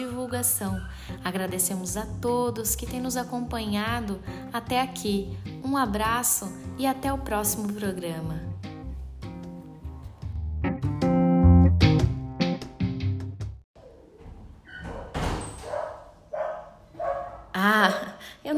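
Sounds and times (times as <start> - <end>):
music: 0.0 - 13.6
speech: 0.3 - 8.5
neighbor's dogs barking and yelping: 14.7 - 17.6.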